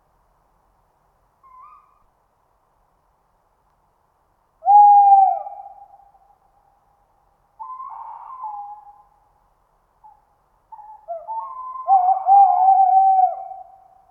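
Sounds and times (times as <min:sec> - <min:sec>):
tawny owl hooting: 0:01.4 - 0:02.0, 0:04.6 - 0:06.2, 0:07.6 - 0:09.2, 0:10.0 - 0:14.0.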